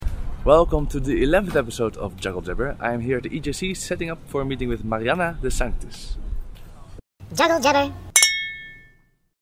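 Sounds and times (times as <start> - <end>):
speech: 0.4 - 6.2, 7.3 - 8.1
glasses clinking in a toast: 8.2 - 9.0.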